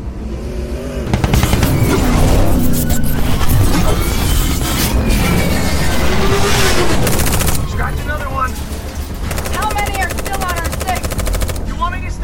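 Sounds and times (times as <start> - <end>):
engine roaring: 0.0 - 11.8
automatic gunfire: 7.0 - 7.7, 9.2 - 11.8.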